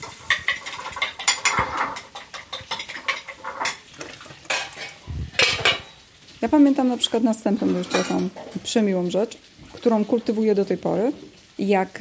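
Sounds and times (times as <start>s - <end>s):
metal utensils clattering and scraping against a pan: 0.0s - 6.0s, 6.8s - 8.9s
fish frying in a pan: 0.0s - 12.0s
speech: 6.4s - 12.0s.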